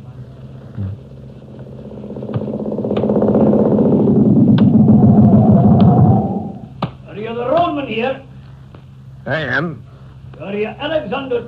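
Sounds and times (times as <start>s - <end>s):
motorcycle engine idling and rumbling: 0.0s - 6.8s
speech: 9.3s - 9.8s, 10.5s - 11.4s.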